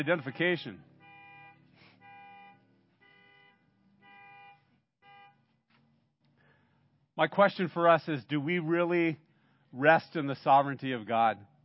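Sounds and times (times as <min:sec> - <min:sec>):
speech: 0:00.0 - 0:00.9, 0:07.2 - 0:11.5
car horn honking in blaring bursts: 0:00.0 - 0:05.6.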